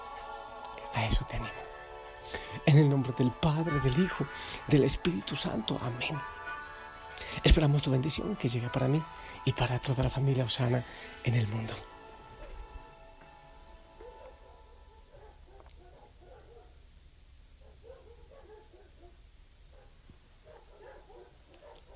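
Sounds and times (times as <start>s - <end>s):
constant hiss: 0.0s - 21.9s
speech: 1.0s - 6.4s, 7.4s - 11.9s
dogs barking: 14.0s - 16.8s, 17.6s - 21.9s.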